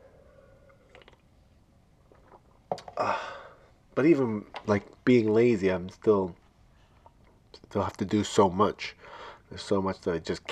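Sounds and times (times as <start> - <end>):
person sipping water: 0.7 - 1.3, 2.1 - 3.0
speech: 4.0 - 6.4, 7.7 - 10.5.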